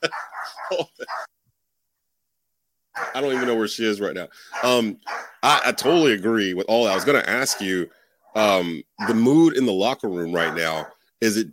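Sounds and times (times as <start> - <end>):
speech: 0.0 - 1.2, 3.2 - 11.5
dog barking excitedly: 0.0 - 1.3, 3.0 - 3.7, 4.5 - 6.1, 6.8 - 7.8, 9.0 - 9.4, 10.3 - 11.0.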